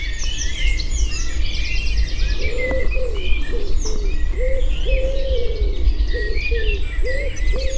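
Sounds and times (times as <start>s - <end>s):
blackbirds singing in an Irish woodland at spring dawn: 0.0s - 7.7s
wood pigeon cooing in an Irish woodland: 2.4s - 7.7s.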